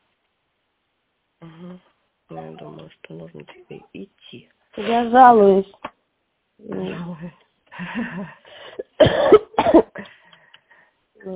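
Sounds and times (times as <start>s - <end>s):
speech: 1.4s - 5.9s, 6.6s - 9.8s
wheezy breath: 7.7s - 8.9s
harsh coughing: 8.6s - 10.1s.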